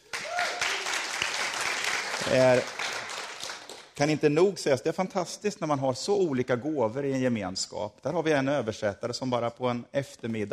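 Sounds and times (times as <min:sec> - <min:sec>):
crowd applauding: 0:00.0 - 0:04.2
speech: 0:02.2 - 0:02.8, 0:04.0 - 0:10.5.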